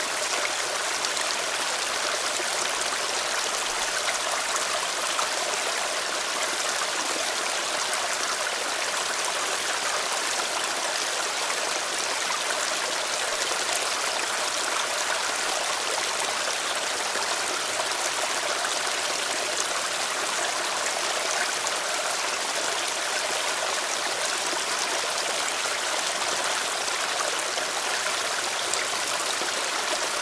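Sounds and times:
fast rushing waterfall stream: 0:00.0 - 0:30.2.

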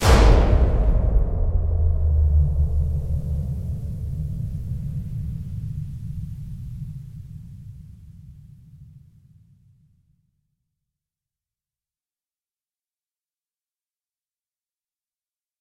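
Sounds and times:
big dramatic explosion: 0:00.0 - 0:08.0.

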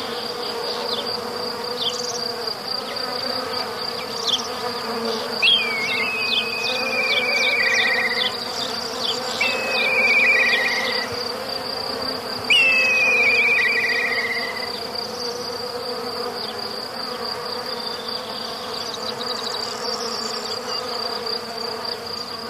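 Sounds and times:
bee buzzing as a steady low drone in a forest: 0:00.0 - 0:22.4
constant high insect whine of crickets: 0:00.0 - 0:22.4
bird trills dropping slightly in pitch: 0:05.4 - 0:08.4, 0:09.1 - 0:11.2, 0:12.5 - 0:14.8.

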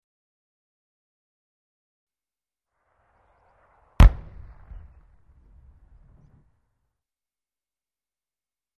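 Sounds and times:
rocket shell explosion: 0:02.9 - 0:06.6.

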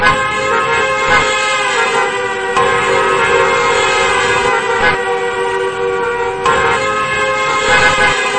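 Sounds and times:
heavy road traffic with many cars: 0:00.0 - 0:08.3.

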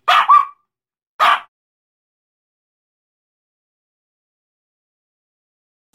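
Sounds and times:
dog barking: 0:00.0 - 0:00.6, 0:01.2 - 0:01.5.

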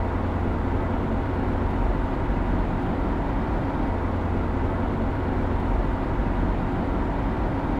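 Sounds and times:
continuous booming noise of a moving car: 0:00.0 - 0:07.7.

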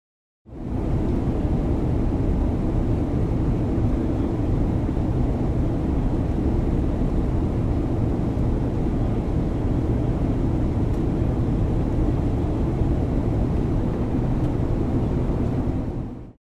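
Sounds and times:
jet passenger plane cabin noise during flight: 0:00.5 - 0:16.4.

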